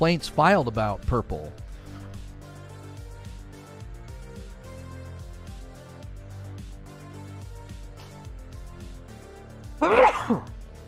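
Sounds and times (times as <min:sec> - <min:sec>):
speech: 0:00.0 - 0:01.6
sneeze: 0:09.8 - 0:10.5.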